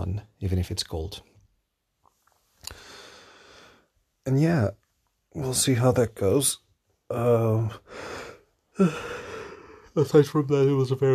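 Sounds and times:
speech: 0.1 - 1.3, 4.2 - 8.2, 8.8 - 9.2, 10.0 - 11.1
voiced breath: 2.6 - 4.0, 7.7 - 10.0
person yawning: 8.8 - 9.6.

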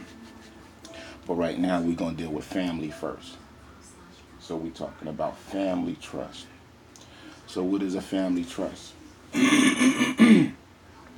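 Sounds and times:
speech: 1.3 - 3.4, 4.5 - 6.5, 7.5 - 10.2
person clearing a throat thick with phlegm and mucus: 9.4 - 10.6.

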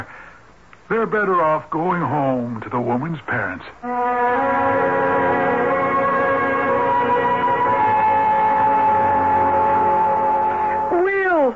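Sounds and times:
speech: 0.9 - 5.7
police car siren wailing as the car drives up: 3.8 - 11.1.

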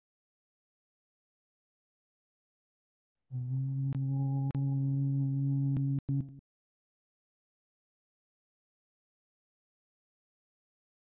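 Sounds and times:
chanted Om humming tone: 3.4 - 6.4.

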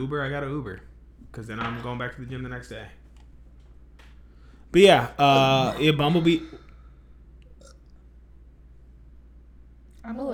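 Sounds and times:
speech: 0.0 - 3.0, 4.7 - 6.6, 10.0 - 10.3
steady low hum: 0.0 - 10.3
woman burping: 5.4 - 6.6, 7.5 - 7.9.

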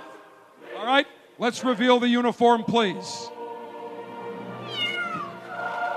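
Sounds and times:
speech: 0.9 - 3.4
cat meowing in drawn-out rising and falling cries: 4.6 - 5.4.

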